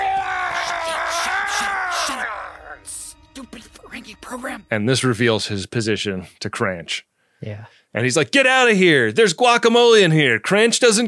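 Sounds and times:
male game character screaming: 0.0 - 2.9
speech: 4.3 - 11.0.

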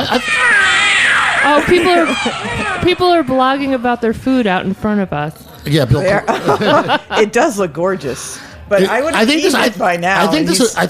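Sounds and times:
laughter: 0.0 - 0.4, 1.4 - 3.4, 6.0 - 7.4
cat meowing sound effect: 0.0 - 4.0
speech: 1.6 - 10.8.

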